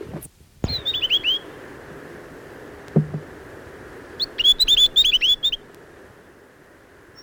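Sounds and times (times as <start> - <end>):
Chatham Island tomtit singing bright whistled notes: 0.6 - 1.4, 4.2 - 5.6.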